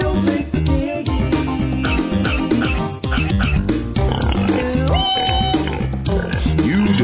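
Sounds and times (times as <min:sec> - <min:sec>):
loud dense backing music: 0:00.0 - 0:07.0
pig oinking and grunting: 0:01.8 - 0:07.0.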